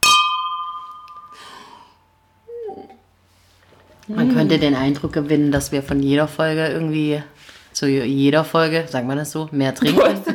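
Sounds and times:
glasses of sparkling wine clinking: 0.0 - 1.8
breathy sound: 1.2 - 3.0
speech: 4.1 - 10.3.

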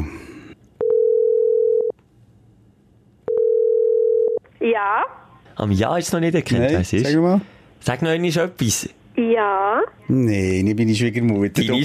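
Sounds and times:
telephone ringback tone during an outgoing call: 0.8 - 1.9, 3.3 - 4.4
speech: 4.6 - 11.8.

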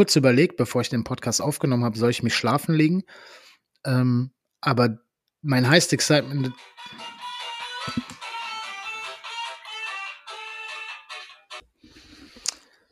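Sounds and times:
speech: 0.0 - 7.2
mobile phone ringing with a melodic electronic tune: 6.2 - 11.6.

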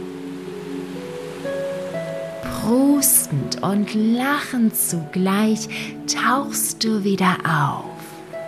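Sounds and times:
ocean wave washing over: 0.0 - 6.1
soft sustained musical tones: 0.0 - 8.4
speech: 2.6 - 7.9.

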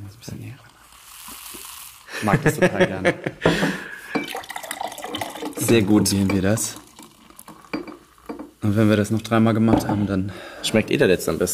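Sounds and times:
drink poured into a glass: 0.6 - 2.1, 4.1 - 8.6
laughter: 2.1 - 3.8
speech: 2.2 - 3.7, 5.7 - 6.8, 8.7 - 11.5.

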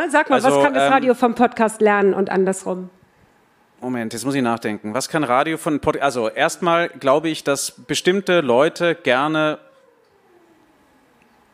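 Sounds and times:
speech: 0.0 - 3.0, 3.8 - 9.7
quiet low ambient hum: 0.0 - 11.5
siren wailing with a downward sliding tone: 6.6 - 11.5.

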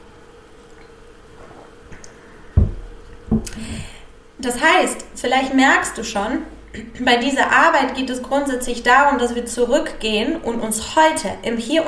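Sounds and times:
person sipping water: 0.8 - 3.9
speech: 4.4 - 11.8.

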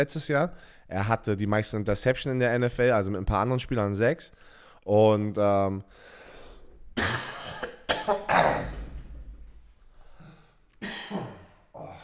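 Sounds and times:
speech: 0.0 - 6.2, 7.0 - 8.7
dry deep-sounding raspy cough: 7.0 - 9.0, 10.8 - 12.0.

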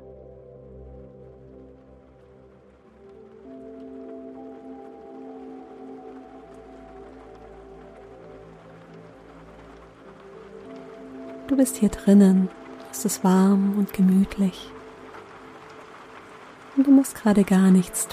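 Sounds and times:
steady gentle rain pattering: 0.0 - 18.1
speech: 11.5 - 14.8, 17.0 - 18.1.

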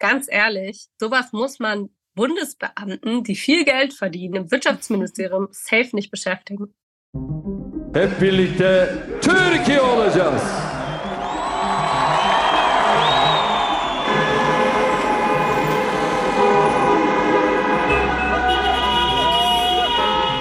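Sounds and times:
speech: 0.0 - 10.7
loud dense crowd din: 9.0 - 20.3
many car horns honking in a busy street to celebrate an election win: 13.0 - 20.3.

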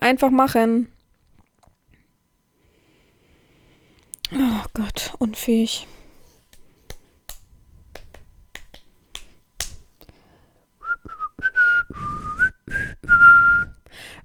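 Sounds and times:
speech: 0.1 - 0.9, 4.3 - 6.0
sharp finger snaps: 6.4 - 10.2
person whistling a short wavering tune: 10.8 - 13.9.

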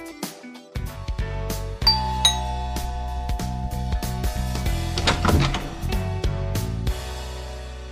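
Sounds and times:
doorbell chime: 1.8 - 5.9
dense sustained music with repeated sharp strikes: 1.8 - 7.9.

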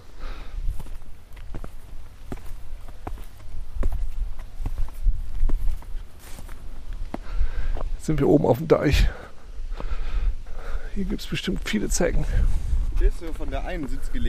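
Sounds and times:
footsteps of people walking up onto a dike outdoors: 0.6 - 8.1, 12.4 - 14.2
speech: 8.0 - 9.2, 11.0 - 14.2.

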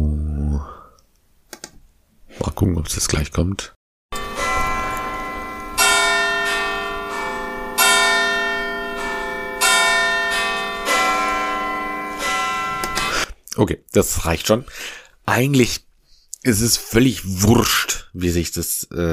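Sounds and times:
speech: 2.6 - 3.8, 13.6 - 19.1
clock tower bells ringing a slow chime melody: 4.1 - 13.2.

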